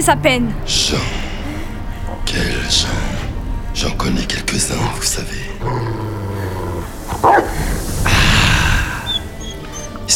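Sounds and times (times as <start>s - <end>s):
speech: 0.0s - 1.2s, 2.2s - 3.2s, 3.8s - 6.5s
black dog growling: 5.6s - 10.0s
black dog barking harshly: 7.2s - 7.6s.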